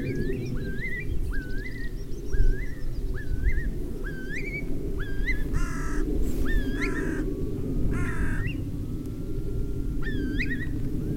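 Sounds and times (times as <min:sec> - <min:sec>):
harsh curlew calls: 0:00.0 - 0:07.3, 0:07.9 - 0:08.7
curlew giving rising slurred whistles: 0:00.0 - 0:11.1
steady low rumbling noise: 0:00.0 - 0:11.1.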